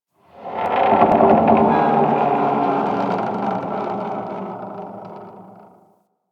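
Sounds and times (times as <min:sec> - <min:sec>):
exterior metal debris creaking: 0:00.9 - 0:05.1.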